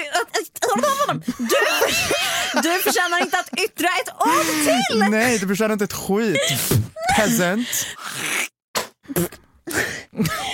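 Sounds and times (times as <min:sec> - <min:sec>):
speech: 0:00.4 - 0:08.5, 0:09.1 - 0:10.5
laughter: 0:00.7 - 0:05.4
voice making mock spitting sound like a wet fart: 0:08.1 - 0:09.5.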